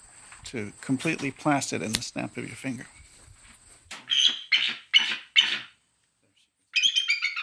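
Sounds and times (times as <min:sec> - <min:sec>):
speech: 0:00.5 - 0:03.0
female eagle harsh barking calls: 0:04.0 - 0:05.8, 0:06.7 - 0:07.4.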